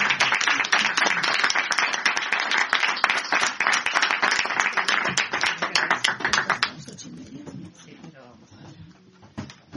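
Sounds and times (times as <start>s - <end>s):
audience applause: 0.0s - 6.9s.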